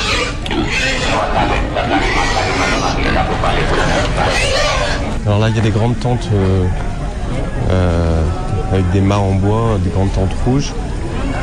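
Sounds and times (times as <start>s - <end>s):
several tethered pigs grunting and snorting: 0.0s - 5.6s, 7.5s - 9.1s
outdoor bustle: 0.0s - 11.4s
voices murmuring: 0.0s - 11.4s
speech: 5.3s - 6.9s, 7.6s - 10.8s.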